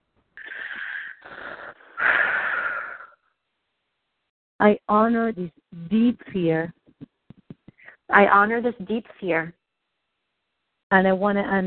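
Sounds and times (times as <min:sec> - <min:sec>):
deep breath: 0:00.4 - 0:03.2
speech: 0:04.6 - 0:06.8, 0:08.1 - 0:09.6, 0:10.9 - 0:11.6.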